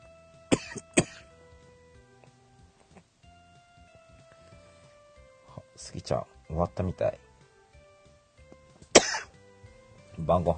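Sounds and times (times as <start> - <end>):
person coughing: 0.5 - 1.3, 8.9 - 9.3
speech: 5.9 - 7.2, 10.3 - 10.5.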